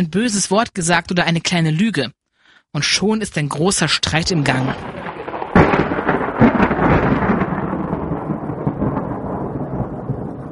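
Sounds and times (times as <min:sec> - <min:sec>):
speech: 0:00.0 - 0:05.0
steady rain: 0:04.1 - 0:10.5
thunder: 0:04.4 - 0:10.5.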